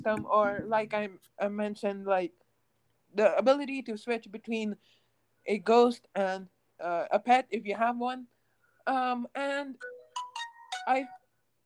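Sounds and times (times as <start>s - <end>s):
speech: 0.0s - 2.4s, 3.1s - 10.0s, 10.8s - 11.2s
phone notification chime: 9.8s - 11.2s.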